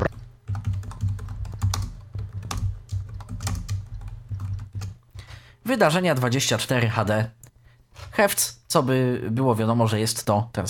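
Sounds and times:
fingers typing on a computer keyboard: 0.1 - 5.3
speech: 5.7 - 7.4, 8.0 - 10.6.

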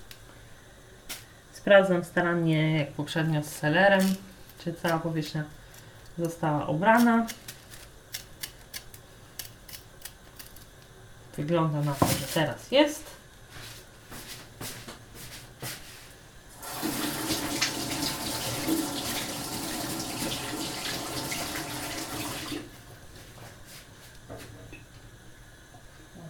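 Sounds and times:
speech: 1.6 - 5.6, 6.2 - 7.4, 11.4 - 13.1
tap water running over a peeled parsley root being rinsed: 16.5 - 22.7.

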